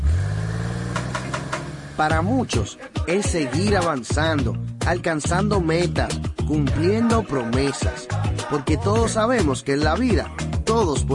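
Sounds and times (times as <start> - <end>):
car engine starting and revving: 0.0 - 2.6
speech: 2.0 - 11.1.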